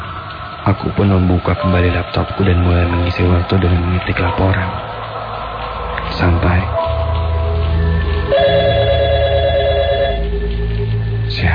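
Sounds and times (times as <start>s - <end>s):
constant low hum: 0.0s - 11.5s
speech: 0.7s - 5.0s, 6.2s - 6.8s
office telephone ringing: 8.3s - 10.4s.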